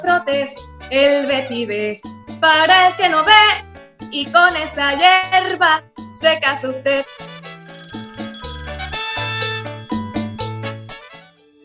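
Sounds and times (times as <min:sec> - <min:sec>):
speech: 0:00.0 - 0:07.3
telephone bright melodic electronic ringtone: 0:07.7 - 0:11.6.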